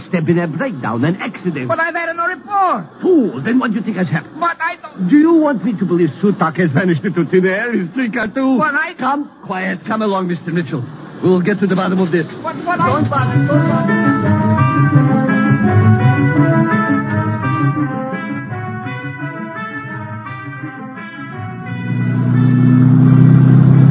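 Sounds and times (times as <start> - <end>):
speech: 0.1 - 15.0, 16.6 - 18.2
car engine revving and pulling away through the gears: 11.9 - 23.9.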